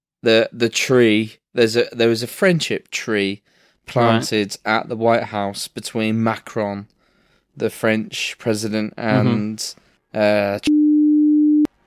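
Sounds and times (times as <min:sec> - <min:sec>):
speech: 0:00.2 - 0:07.0, 0:07.6 - 0:10.8
censor beep: 0:10.7 - 0:11.7.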